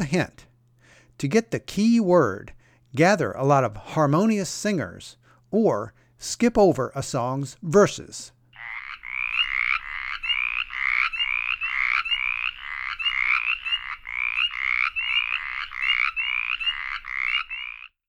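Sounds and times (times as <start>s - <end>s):
speech: 0.0s - 0.5s, 1.2s - 8.4s
mountain chorus frogs calling: 8.5s - 18.0s.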